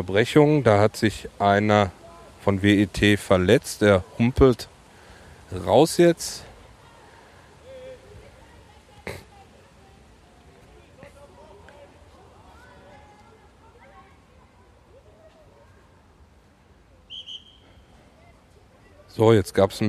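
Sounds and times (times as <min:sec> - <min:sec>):
speech: 0:00.0 - 0:04.7, 0:05.5 - 0:06.5, 0:19.2 - 0:19.8
outdoor crowd chatter: 0:00.0 - 0:19.8
voices: 0:01.8 - 0:19.2
shrill referee's whistle blasts during youth match: 0:17.1 - 0:17.9.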